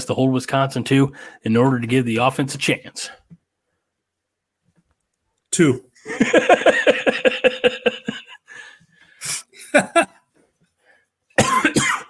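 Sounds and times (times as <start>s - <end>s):
speech: 0.0s - 3.2s, 5.6s - 8.2s
laughter: 6.0s - 8.5s, 9.2s - 10.1s
person in a hacking coughing fit: 9.2s - 10.2s, 11.4s - 12.0s.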